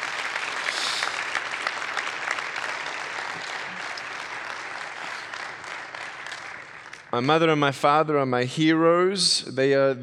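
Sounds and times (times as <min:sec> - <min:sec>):
large audience applause: 0:00.0 - 0:07.2
speech: 0:07.1 - 0:10.0.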